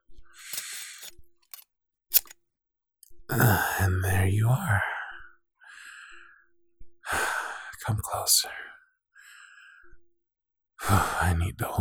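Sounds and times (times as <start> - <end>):
scissors snipping and cutting: 0.4 - 2.4
short sharp metallic clicks: 0.4 - 2.4
speech: 3.3 - 5.0, 8.2 - 8.7, 10.9 - 11.7.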